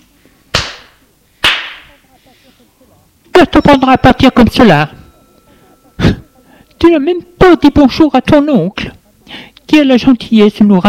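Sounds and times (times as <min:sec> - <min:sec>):
sharp loud slaps across the face: 0:00.5 - 0:01.9
speech: 0:03.4 - 0:05.0, 0:06.8 - 0:10.8.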